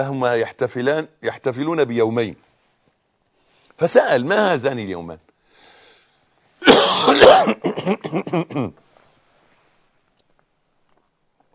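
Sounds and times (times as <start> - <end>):
speech: 0.0 - 2.5, 3.8 - 5.2, 7.2 - 8.8
harsh drawn-out cough: 6.6 - 8.8.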